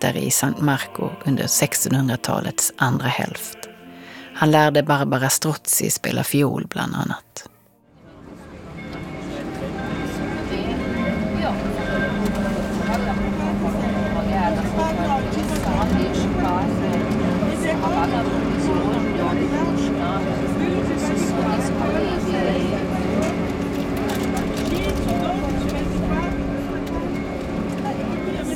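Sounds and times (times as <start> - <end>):
speech: 0.0 - 3.7, 4.4 - 7.5
water taxi motorboat engine droning on a canal: 7.9 - 28.5
murmuring voices: 8.0 - 28.5.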